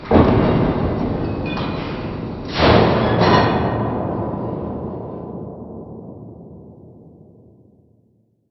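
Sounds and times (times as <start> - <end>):
industrial ambience: 0.0 - 7.8.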